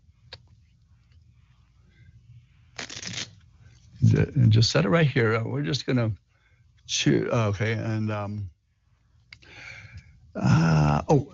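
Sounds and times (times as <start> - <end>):
playing cards being shuffled with a crisp riffle: 2.8 - 3.9
speech: 4.0 - 6.2, 6.9 - 8.6, 10.4 - 11.3.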